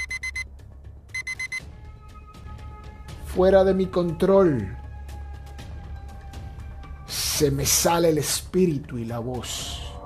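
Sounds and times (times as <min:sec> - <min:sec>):
electronic alarm beeping in shrill pulses: 0:00.0 - 0:00.5, 0:01.2 - 0:01.7
speech: 0:03.4 - 0:04.8, 0:07.4 - 0:09.7.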